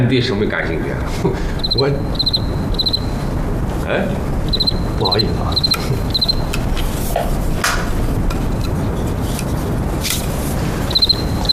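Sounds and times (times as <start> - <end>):
speech: 0.0 - 2.4, 3.9 - 4.3, 5.0 - 6.4, 7.2 - 8.6
steady rough hiss: 0.0 - 11.5
cricket chirping: 1.6 - 3.4, 4.4 - 6.6, 10.8 - 11.5.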